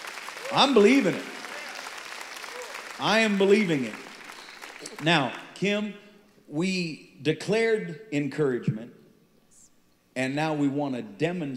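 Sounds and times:
crowd applauding: 0.0 - 5.6
speech: 0.5 - 1.3, 3.0 - 4.1, 4.9 - 9.0, 10.2 - 11.5.

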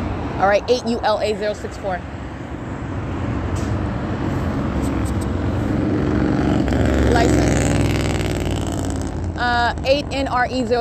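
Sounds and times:
steady traffic-like noise: 0.0 - 10.7
speech: 0.4 - 2.2, 9.4 - 10.7
motorcycle engine rumbling past: 4.7 - 10.3.

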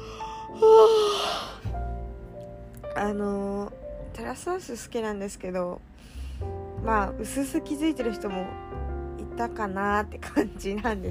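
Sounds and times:
person yawning: 0.5 - 1.7
speech: 3.0 - 8.7, 9.4 - 11.0.

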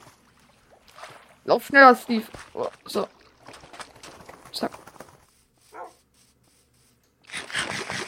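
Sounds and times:
speech: 1.5 - 3.2
video game dog barking in short bright bursts: 5.7 - 6.0.

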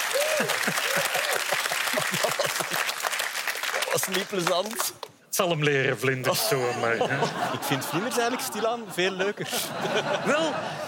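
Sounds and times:
crowd clapping: 0.0 - 5.2
laughter: 0.2 - 3.0, 6.3 - 10.8
speech: 0.4 - 3.0, 3.9 - 10.8.

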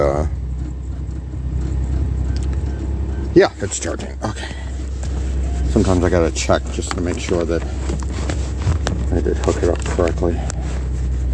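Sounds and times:
low engine drone inside a moving car: 0.0 - 11.3
road rumble inside a moving car: 0.0 - 11.3
speech: 3.4 - 4.6, 5.8 - 8.3, 9.2 - 10.5.

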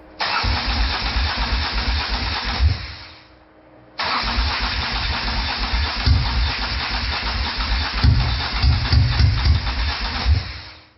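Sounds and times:
flooded V-twin motorcycle engine cranking without catching: 0.2 - 2.6, 4.0 - 10.3.

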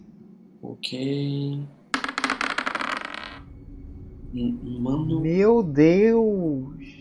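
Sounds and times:
speech: 0.6 - 1.8, 4.3 - 7.0
die rolled onto a hard table for a tabletop role-playing game check: 2.0 - 3.4.

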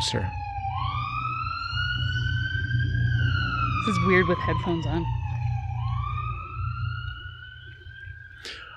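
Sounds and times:
speech: 0.0 - 0.4, 3.8 - 5.2
low rumble of traffic: 0.0 - 8.7
passing emergency vehicle siren wailing: 0.0 - 8.7.

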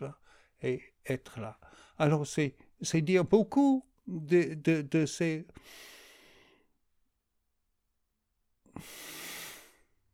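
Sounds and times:
speech: 0.0 - 6.0, 8.8 - 9.1
slow deep breathing during a relaxation exercise: 0.2 - 0.6, 5.6 - 6.8, 8.6 - 10.0.

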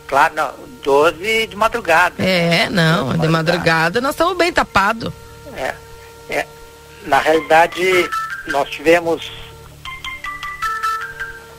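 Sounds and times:
speech: 0.1 - 9.4
telephone ringing with a melodic electronic ringtone: 7.2 - 11.5.

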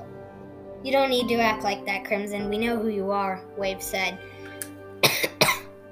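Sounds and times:
speech: 0.9 - 4.3
person coughing: 5.0 - 5.7.

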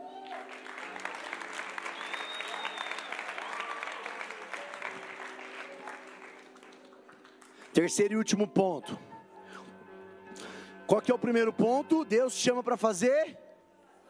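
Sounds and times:
large crowd applauding: 0.0 - 8.1
speech: 7.8 - 9.1, 11.0 - 13.4.

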